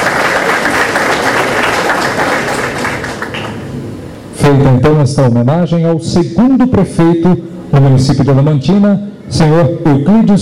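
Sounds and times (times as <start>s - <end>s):
crowd applauding: 0.0s - 3.7s
speech: 4.5s - 10.4s.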